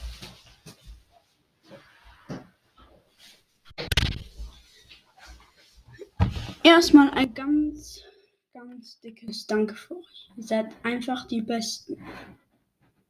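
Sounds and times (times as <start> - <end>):
shuffling: 0.0 - 2.2, 4.2 - 6.8
footsteps: 0.0 - 6.7
speech: 6.6 - 8.1, 8.8 - 12.4.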